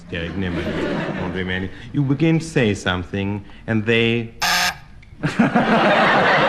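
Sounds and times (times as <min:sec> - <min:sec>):
laughter: 0:00.0 - 0:02.5, 0:05.2 - 0:06.4
speech: 0:00.1 - 0:04.4, 0:05.2 - 0:06.4
game show buzzer pressed during a panel game: 0:04.4 - 0:04.9.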